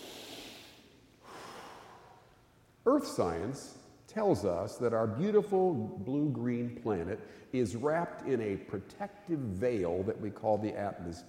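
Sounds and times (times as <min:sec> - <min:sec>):
slow deep breath during a guided breathing exercise: 0:00.0 - 0:02.5, 0:07.2 - 0:07.6
speech: 0:02.8 - 0:11.2.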